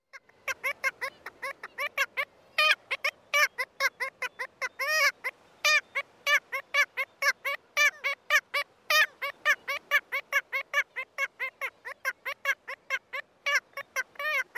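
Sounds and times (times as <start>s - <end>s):
kittiwake choking call in courtship: 0.2s - 14.5s.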